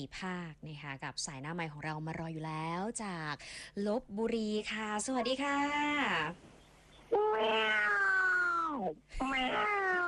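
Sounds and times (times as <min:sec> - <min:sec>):
speech: 0:00.0 - 0:06.5, 0:07.1 - 0:08.1, 0:08.7 - 0:10.0
cat meowing: 0:07.1 - 0:10.0.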